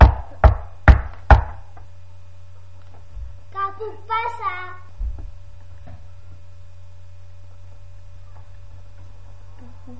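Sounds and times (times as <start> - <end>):
solid knocks on a wooden door: 0.0 - 1.6.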